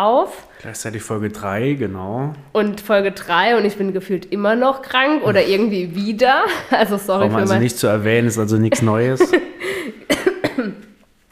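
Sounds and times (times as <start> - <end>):
speech: 0.0 - 10.0
laughter: 6.5 - 10.1
person coughing: 9.6 - 10.9.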